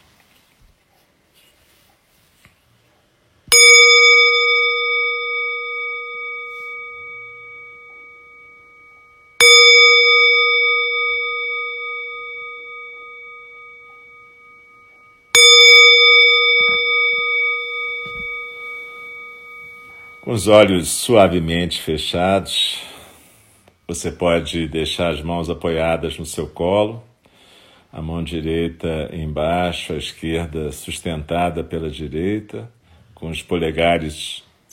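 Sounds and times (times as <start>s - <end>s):
meditation bell strikes: 3.5s - 23.3s
speech: 20.3s - 22.9s, 23.9s - 27.1s, 27.9s - 34.7s.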